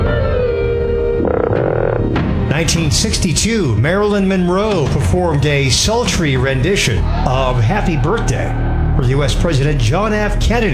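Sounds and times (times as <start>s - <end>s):
frog croaking: 1.0s - 2.5s
speech: 2.6s - 10.7s.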